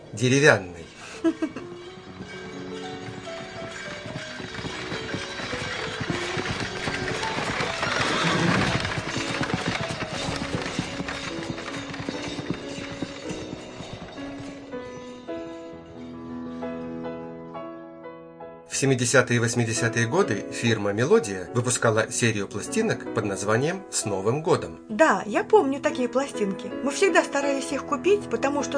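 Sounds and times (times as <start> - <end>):
speech: 0.1 - 1.6, 18.8 - 28.7
tonal music: 0.2 - 24.6
horse neighing: 0.8 - 14.6
horse hooves clip-clopping: 1.0 - 16.1.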